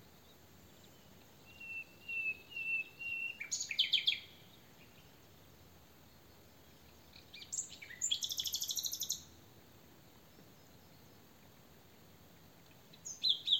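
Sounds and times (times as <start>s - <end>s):
Luscinia megarhynchos common nightingale song: 0.0s - 13.5s.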